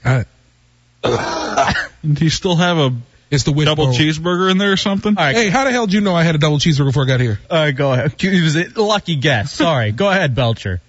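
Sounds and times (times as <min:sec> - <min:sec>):
speech: 0:00.0 - 0:00.3, 0:02.1 - 0:10.8
throat clearing: 0:01.0 - 0:02.0.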